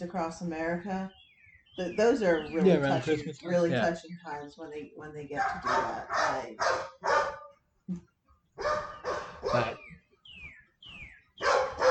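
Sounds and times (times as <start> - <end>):
speech: 0.0 - 1.2, 1.8 - 7.3, 7.9 - 8.8
dog barking: 5.4 - 7.6, 8.6 - 9.8, 11.4 - 11.8.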